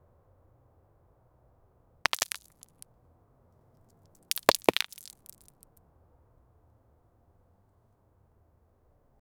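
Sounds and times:
small rocks falling: 0:02.1 - 0:02.8, 0:04.3 - 0:05.5.

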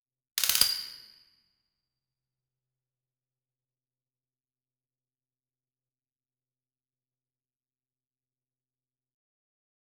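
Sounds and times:
authentic analog 35mm film camera running: 0:00.4 - 0:01.0.

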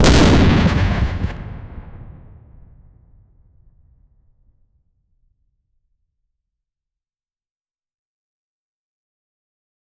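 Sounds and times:
heavy explosion of artillery detonation: 0:00.0 - 0:04.0.

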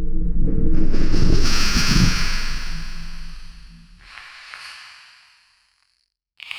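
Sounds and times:
cinematic transformation sound effect: 0:00.2 - 0:04.0.

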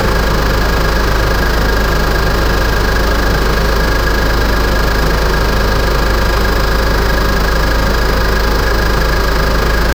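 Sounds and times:
marine diesel engine running: 0:00.0 - 0:09.9.

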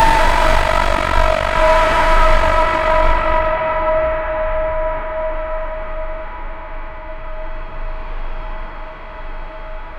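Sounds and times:
reverberant metallic cinematic noise: 0:00.0 - 0:05.2.

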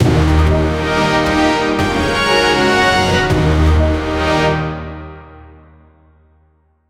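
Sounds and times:
imperial fanfare: 0:00.0 - 0:05.2.

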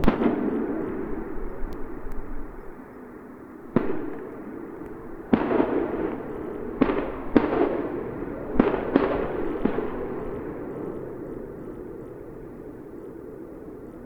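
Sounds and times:
gunfire in a war atmosphere: 0:00.0 - 0:02.4, 0:03.7 - 0:11.2
bombing in a war atmosphere: 0:00.0 - 0:02.6, 0:03.7 - 0:10.6.

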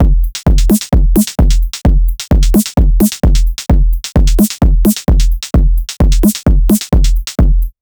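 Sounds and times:
groovy kick drum: 0:00.0 - 0:07.8.

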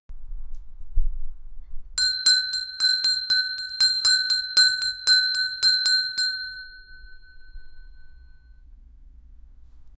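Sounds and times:
bell tolling: 0:02.0 - 0:08.3.

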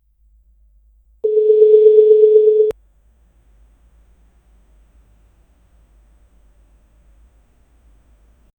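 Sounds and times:
chat message notification: 0:01.2 - 0:02.7.

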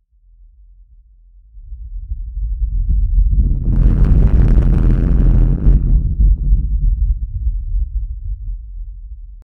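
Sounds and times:
deep rumbling earthquake: 0:02.4 - 0:09.4.

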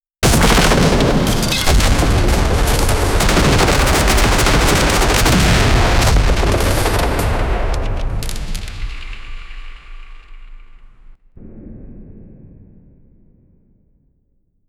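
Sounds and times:
fantasy medieval castle battle: 0:00.2 - 0:13.3.

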